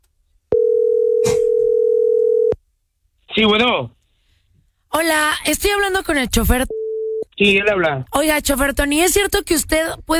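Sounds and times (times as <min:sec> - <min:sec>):
telephone dial tone of an outgoing call to a driver: 0:00.5 - 0:02.6, 0:06.7 - 0:07.2
speech: 0:03.4 - 0:04.0, 0:04.9 - 0:06.8, 0:07.4 - 0:10.1.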